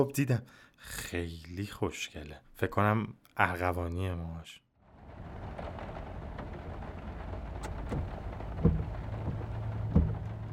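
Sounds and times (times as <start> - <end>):
speech: 0.0 - 4.6
light rain pattering on a moving car: 1.0 - 10.5
raindrops tapping against a surface: 4.9 - 10.5
low engine hum inside a moving car: 5.0 - 10.5.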